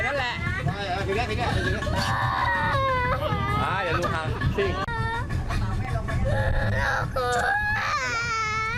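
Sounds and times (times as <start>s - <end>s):
adults talking: 0.0s - 8.7s
steady engine-like rumble: 0.0s - 8.7s
speech: 1.1s - 2.2s, 4.6s - 4.8s
young child crying during flood rescue: 2.0s - 4.0s, 6.4s - 8.7s.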